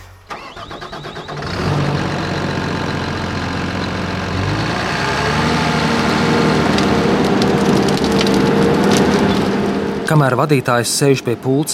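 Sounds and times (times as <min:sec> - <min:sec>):
heavy forestry machine engine running: 0:00.3 - 0:11.7
wood cracking and splintering: 0:04.4 - 0:11.6
speech: 0:10.1 - 0:11.7.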